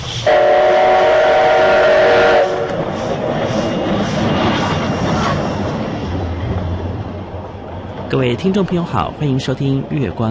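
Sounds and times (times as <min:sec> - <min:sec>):
steam train whistle blasting: 0:00.0 - 0:02.8
steam train wheels rolling along the track: 0:00.0 - 0:10.2
speech: 0:08.1 - 0:10.2.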